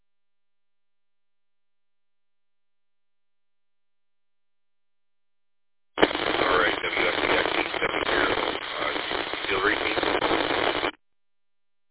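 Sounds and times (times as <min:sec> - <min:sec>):
voice buried in radio noise: 0:06.0 - 0:10.9
scratchy band-limited ham radio repeater transmission: 0:06.0 - 0:11.0.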